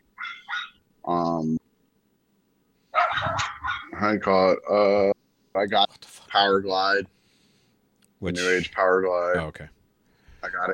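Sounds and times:
neighbor's dogs barking: 0.1 - 0.8, 2.9 - 4.1
speech: 1.1 - 1.6, 4.1 - 7.2, 8.2 - 9.8, 10.4 - 10.7.

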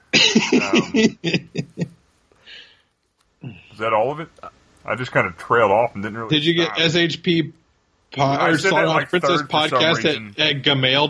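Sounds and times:
laughter: 0.1 - 2.0, 3.4 - 7.4, 8.2 - 11.0
person coughing: 0.2 - 1.5
speech: 0.4 - 1.9, 3.4 - 11.0.

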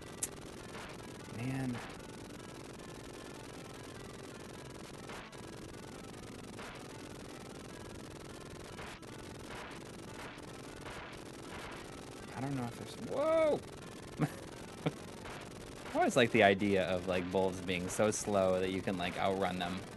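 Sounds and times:
speech: 1.4 - 2.0, 12.4 - 15.0, 16.0 - 19.9
rapid-fire video game gunfire: 6.6 - 7.1, 8.6 - 13.2, 14.2 - 19.9.

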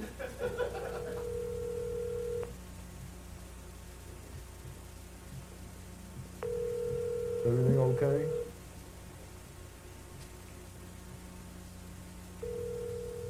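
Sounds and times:
laughter: 0.0 - 1.3
hissy phone line: 0.7 - 2.5, 6.4 - 8.6, 12.4 - 13.2
telephone dialing tones: 1.2 - 2.5, 6.4 - 8.5, 12.4 - 13.2
speech: 7.4 - 8.4.

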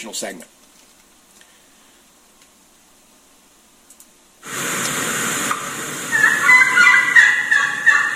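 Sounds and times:
speech: 0.0 - 0.7
outdoor hiss: 0.0 - 8.1
young wild turkey gobbler giving hen-like yelping calls: 5.5 - 8.1.

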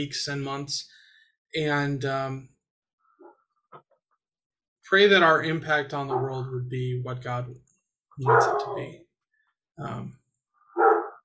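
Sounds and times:
speech: 0.0 - 2.5, 4.9 - 9.0, 9.8 - 10.2
dog barking with gruff woofs: 6.1 - 6.4, 8.2 - 8.9, 10.8 - 11.2.

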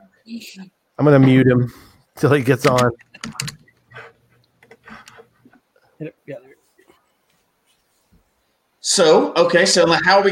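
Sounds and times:
speech: 0.2 - 3.6, 8.9 - 10.3
typing on a computer keyboard: 2.5 - 5.3.

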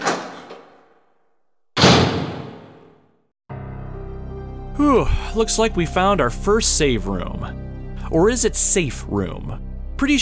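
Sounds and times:
wooden side door flung open with a bang: 0.0 - 1.0, 1.8 - 3.0
heavy bang: 1.8 - 3.0
speech: 4.8 - 10.2.

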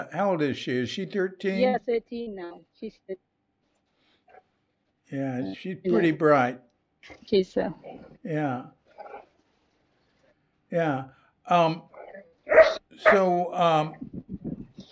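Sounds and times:
speech: 0.0 - 3.3, 5.1 - 9.1, 10.7 - 11.9, 12.5 - 14.4
dog barking in a garden: 8.9 - 9.3, 11.9 - 13.4.

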